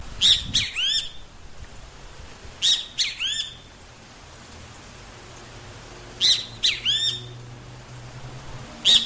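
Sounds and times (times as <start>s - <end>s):
great kiskadee calling: 0.2s - 1.2s, 2.6s - 3.7s, 6.2s - 7.4s, 8.8s - 9.0s.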